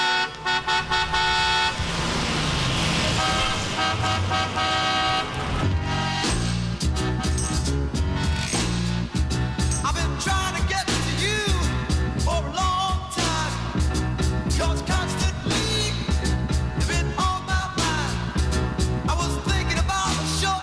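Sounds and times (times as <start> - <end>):
car horns honking on a highway: 0.0 - 8.7
dense highway traffic noise: 0.0 - 20.6.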